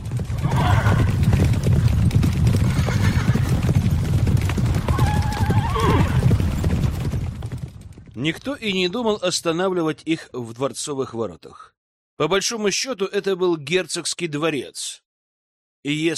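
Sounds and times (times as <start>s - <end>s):
horse hooves clip-clopping as a horse-drawn carriage sets off: 0.0s - 8.7s
horse neighing: 0.4s - 1.4s, 2.6s - 3.7s, 4.8s - 6.4s
speech: 8.2s - 15.0s, 15.8s - 16.1s.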